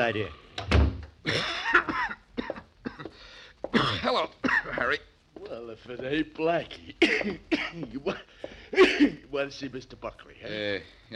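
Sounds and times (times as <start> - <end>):
speech: 0.0 - 0.4, 1.2 - 1.8, 3.7 - 11.1
harsh rasping cough: 1.2 - 4.9, 7.0 - 9.2.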